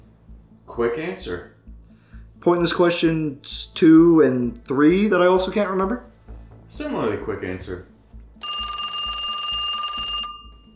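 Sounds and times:
speech: 0.7s - 1.6s, 2.4s - 6.1s, 6.7s - 7.9s
landline telephone ringing with electronic trill: 8.4s - 10.7s.

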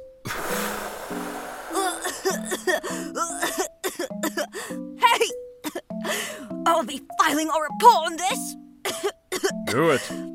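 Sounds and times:
theatrical put-on cough: 1.8s - 4.5s, 8.8s - 10.2s
bouncy cartoon-style music with chirpy sliding tones: 1.8s - 10.3s
speech: 6.8s - 8.5s, 9.7s - 10.3s.

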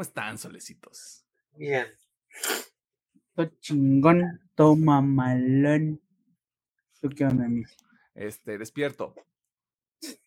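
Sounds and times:
speech: 0.0s - 2.7s, 3.4s - 6.0s, 7.0s - 9.3s
sneeze: 2.4s - 2.7s.

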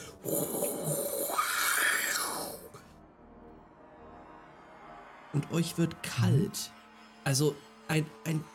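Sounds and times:
person imitating air sucked into a whirlwind: 0.0s - 2.8s
speech: 0.2s - 0.9s, 5.4s - 8.5s.

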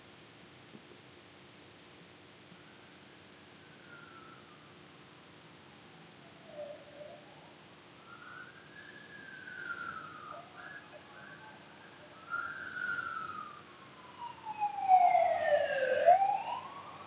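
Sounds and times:
emergency vehicle siren passing: 5.9s - 17.0s.

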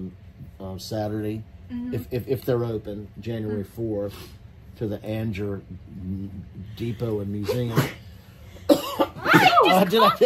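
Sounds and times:
speech: 0.1s - 8.0s, 9.3s - 10.2s
person with reflux clearing throat: 8.7s - 9.2s.

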